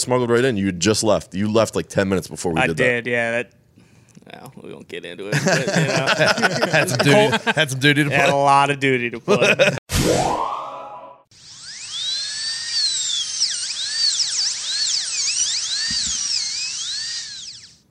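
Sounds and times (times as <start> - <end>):
speech: 0.0 - 3.6, 4.2 - 10.6
laughter: 5.3 - 8.5, 9.1 - 9.8
high-pitched dental-style drill whirring: 11.3 - 17.8.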